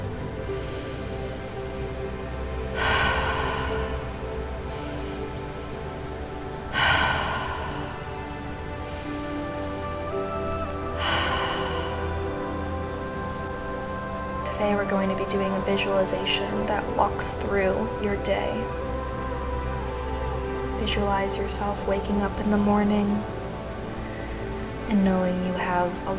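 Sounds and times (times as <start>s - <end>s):
slow deep cleansing breaths during meditation: 0.0s - 22.4s, 23.2s - 26.1s
quiet low hum: 0.0s - 26.1s
speech: 14.6s - 18.8s, 20.8s - 23.4s, 24.9s - 26.1s.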